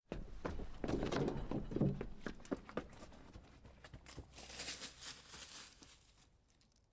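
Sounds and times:
person running into the woods: 0.1 - 4.8.

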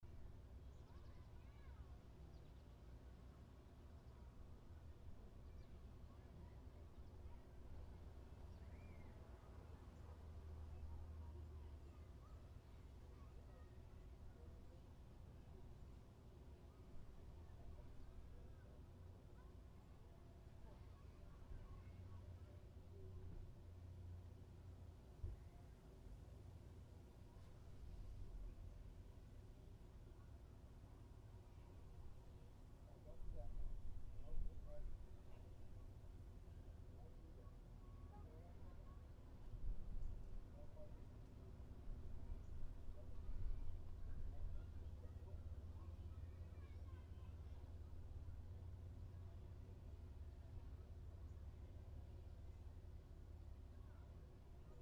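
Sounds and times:
summer beach parking lot ambience: 0.0 - 54.7.

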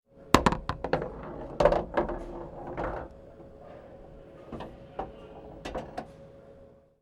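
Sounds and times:
pool table ball return: 0.2 - 6.6.

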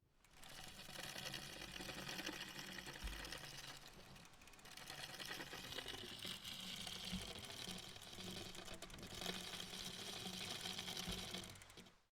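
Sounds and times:
bicycle pedal grinding: 0.2 - 12.0.

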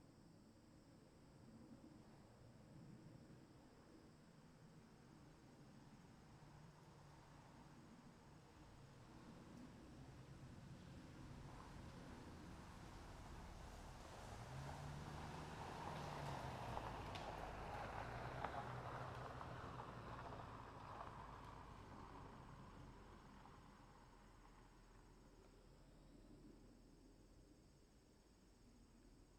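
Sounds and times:
rural road ambience: 1.4 - 26.5.

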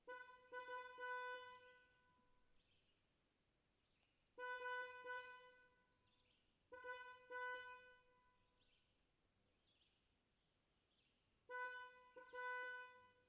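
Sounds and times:
distant car horn: 0.0 - 2.0, 4.4 - 5.8, 6.7 - 8.2, 11.5 - 13.2.

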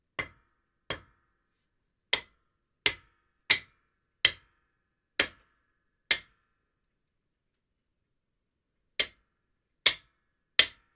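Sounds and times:
hammer on cement: 0.2 - 1.1, 2.1 - 4.5, 5.2 - 5.4, 6.1 - 6.4, 9.0 - 9.2, 9.9 - 10.9.

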